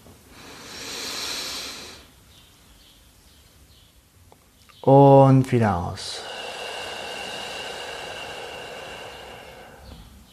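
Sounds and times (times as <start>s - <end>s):
deep inhalation during guided meditation: 0.3s - 2.1s, 6.1s - 10.3s
speech: 4.8s - 6.3s.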